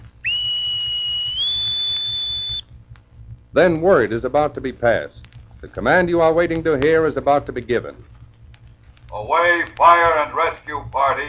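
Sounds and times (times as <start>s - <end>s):
bosun's pipe whistle note: 0.2s - 2.7s
speech: 3.6s - 8.1s, 9.1s - 11.2s.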